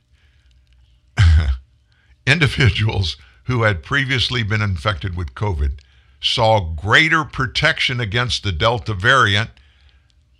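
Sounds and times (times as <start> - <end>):
throat clearing: 1.2 - 1.6
speech: 2.3 - 9.6.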